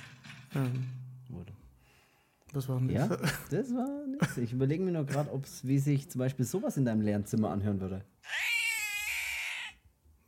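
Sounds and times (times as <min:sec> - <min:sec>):
speech: 0:00.6 - 0:01.6, 0:02.5 - 0:08.4
cat screaming in a harsh yowl: 0:08.2 - 0:09.8.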